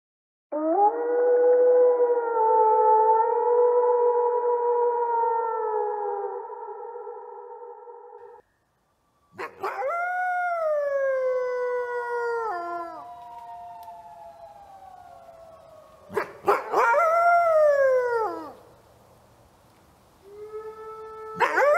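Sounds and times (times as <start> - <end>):
wolf howling: 0.5 - 8.4, 9.4 - 18.6, 20.2 - 21.7.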